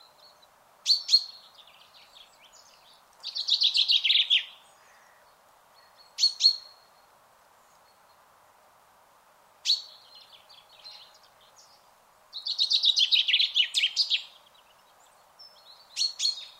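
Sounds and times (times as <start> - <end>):
common chaffinch Fringilla coelebs calls with descending trill and metallic notes: 0.3 - 5.2, 5.8 - 6.8, 9.6 - 14.8, 15.5 - 16.5.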